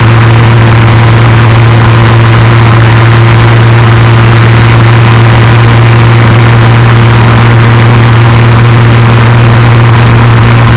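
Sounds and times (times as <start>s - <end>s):
inline six petrol engine at medium speed: 0.0s - 10.7s.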